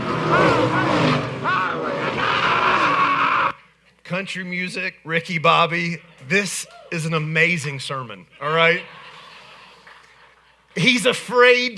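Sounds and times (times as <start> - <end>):
race car tires squealing: 0.0 - 3.6
race cars roaring past on a track: 0.0 - 3.6
speech: 4.1 - 9.0, 10.8 - 11.7.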